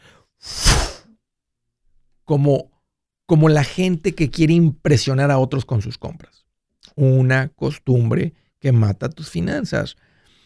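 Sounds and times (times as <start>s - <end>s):
loud forceful sneeze: 0.5s - 1.1s
speech: 2.3s - 2.7s, 3.3s - 10.1s.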